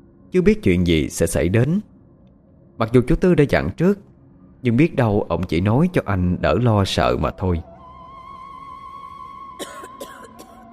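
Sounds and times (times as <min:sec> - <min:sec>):
speech: 0:00.3 - 0:01.9, 0:02.8 - 0:07.7
sudden fit of harsh hoarse coughing: 0:09.6 - 0:10.6.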